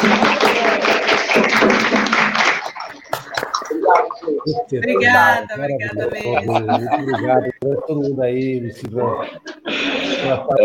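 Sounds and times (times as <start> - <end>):
audience applause: 0.0 - 4.3
laughter: 0.0 - 5.3, 5.9 - 10.6
speech: 4.4 - 10.6.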